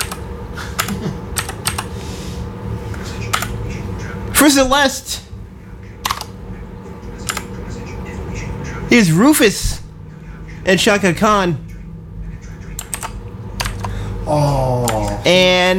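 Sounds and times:
computer keyboard typing: 0.0 - 1.9, 3.2 - 3.6, 6.0 - 6.3, 7.2 - 7.5, 12.6 - 14.0
low hum: 0.0 - 15.7
speech: 4.4 - 5.3, 8.9 - 9.7, 10.6 - 11.6, 15.3 - 15.7.

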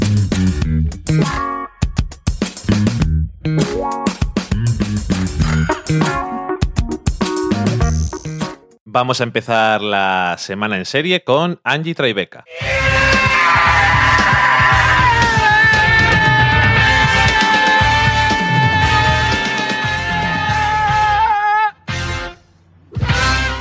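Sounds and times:
busy driving music track: 0.0 - 8.8, 12.6 - 21.3
speech: 1.1 - 1.5, 9.0 - 13.0
loud sustained scream in a TV comedy intro: 12.5 - 21.8.

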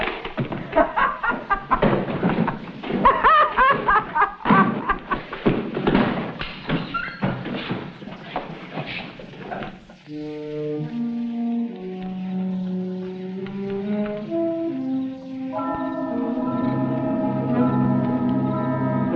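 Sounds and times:
horses walking with hooves clip-clopping: 0.0 - 18.6
laughter: 0.5 - 5.4.

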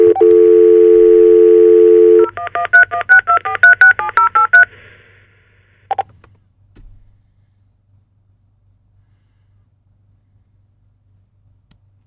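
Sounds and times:
telephone dial tone for international call: 0.0 - 4.7.

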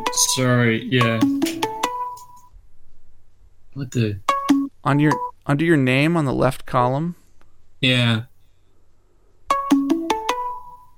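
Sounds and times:
mobile phone ringtone with five-note melodic chime: 0.0 - 2.5, 4.3 - 5.4, 9.5 - 10.9
speech: 0.2 - 1.6, 3.8 - 7.2, 7.8 - 8.3.

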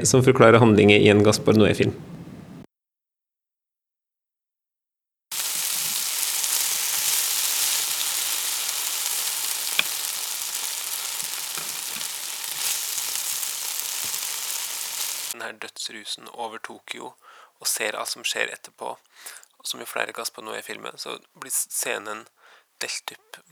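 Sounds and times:
speech: 0.0 - 2.1, 15.9 - 23.5
onions frying: 5.3 - 15.4
sizzling with faint pops: 5.3 - 15.4.

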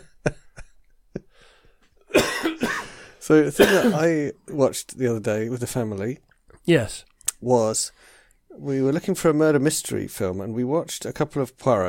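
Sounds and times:
person coughing with raspy throat-clearing: 2.1 - 3.0, 3.6 - 4.1
speech: 3.3 - 11.8.

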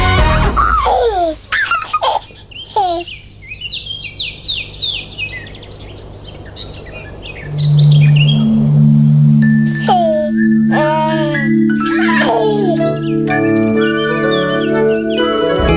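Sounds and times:
baby giggling: 0.6 - 3.1, 9.7 - 13.1
high bird chirps and tweets: 2.6 - 15.2.

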